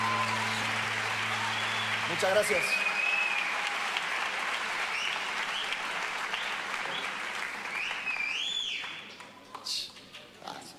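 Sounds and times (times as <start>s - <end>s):
audience applause: 0.0s - 9.1s
audience whistling: 1.5s - 3.5s, 7.7s - 9.1s
speech: 2.1s - 2.9s.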